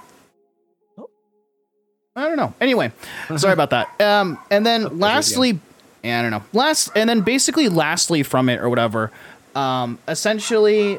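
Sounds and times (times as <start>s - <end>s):
faint steady hum: 2.2s - 6.8s, 7.5s - 10.4s
speech: 2.3s - 10.9s
household pet dog barking: 3.8s - 4.6s, 6.8s - 7.5s, 10.4s - 10.9s.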